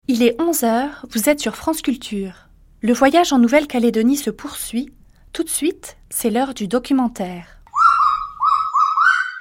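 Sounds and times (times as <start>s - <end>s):
speech: 0.1s - 7.6s
kagu call: 7.7s - 9.3s.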